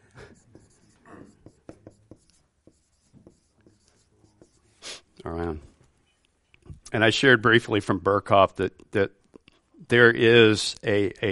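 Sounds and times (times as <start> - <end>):
writing on a board: 0.2 - 4.8
speech: 6.9 - 9.2, 9.9 - 11.3.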